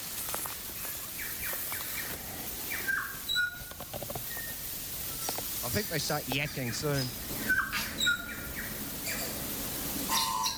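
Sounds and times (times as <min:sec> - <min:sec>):
outdoor ambience: 0:00.0 - 0:10.5
saddleback birds calling with slurred chirps and whistles: 0:01.1 - 0:05.3, 0:06.3 - 0:10.5
speech: 0:05.7 - 0:07.3.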